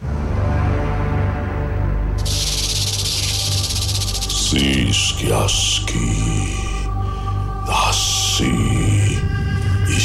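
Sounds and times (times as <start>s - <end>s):
low musical drone: 0.0s - 10.0s
voice imitating a snake hissing: 2.2s - 5.1s
speech: 4.5s - 6.3s.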